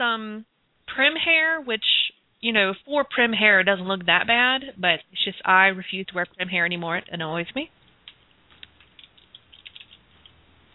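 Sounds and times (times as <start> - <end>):
speech: 0.0 - 7.8
typing on a computer keyboard: 8.0 - 10.4.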